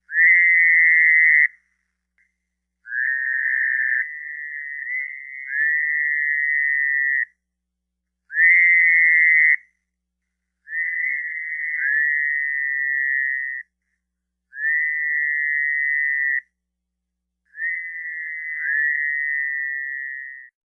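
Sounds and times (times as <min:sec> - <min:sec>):
Fowler's toad calling: 0:00.0 - 0:01.9, 0:02.8 - 0:07.4, 0:08.3 - 0:09.9, 0:10.6 - 0:13.8, 0:14.5 - 0:16.6, 0:17.5 - 0:20.5.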